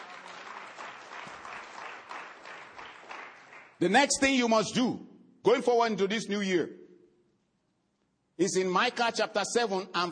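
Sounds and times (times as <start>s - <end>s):
church audience applause during a sermon: 0.0s - 3.8s
speech: 3.8s - 6.8s, 8.4s - 10.0s.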